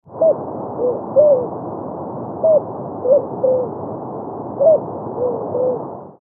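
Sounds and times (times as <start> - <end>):
island collared dove: 0.1 - 1.6, 2.4 - 3.8, 4.6 - 6.1.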